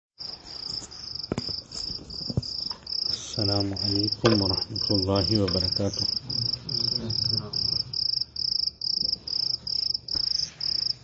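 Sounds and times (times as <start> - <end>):
cricket chirping in the African bush: 0.2 - 11.0
speech: 3.4 - 6.6.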